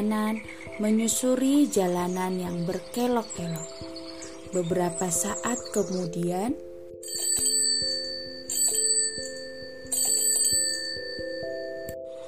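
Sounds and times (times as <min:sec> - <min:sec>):
speech: 0:00.0 - 0:03.8, 0:04.5 - 0:07.2
bicycle bell ringing on a winding road: 0:07.0 - 0:12.0.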